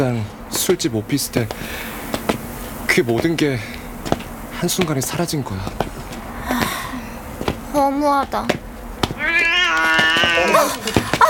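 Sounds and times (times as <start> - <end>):
speech: 0.0 - 2.0, 3.0 - 3.8, 4.6 - 6.0, 7.8 - 8.6, 9.2 - 11.2
faint clicks and thumps: 0.5 - 11.2
cat giving a long tonal meow: 9.1 - 11.2.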